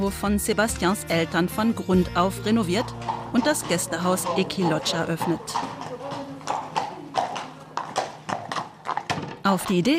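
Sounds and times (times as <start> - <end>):
speech: 0.0 - 5.8, 9.5 - 9.9
horse hooves clip-clopping: 1.4 - 9.9
person murmuring faintly: 3.6 - 7.8.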